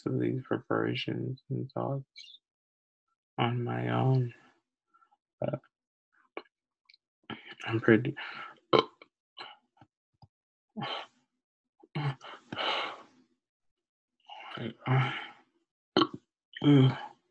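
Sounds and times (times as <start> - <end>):
speech: 0.0 - 2.4, 3.4 - 4.4, 5.4 - 5.7, 7.3 - 8.9, 10.8 - 11.1, 12.0 - 12.9, 14.6 - 15.3, 16.0 - 17.1
loud belches: 16.0 - 17.0.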